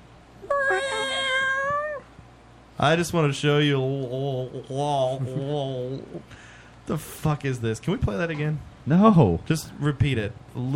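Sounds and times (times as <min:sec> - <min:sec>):
person imitating a cat meow in a played video clip: 0:00.4 - 0:02.2
speech: 0:02.8 - 0:10.7.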